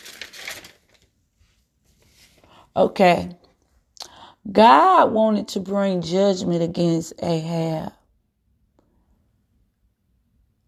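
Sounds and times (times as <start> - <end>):
paper sheets rustling as they are shuffled: 0.0 - 2.5
speech: 2.8 - 3.4, 4.4 - 8.0.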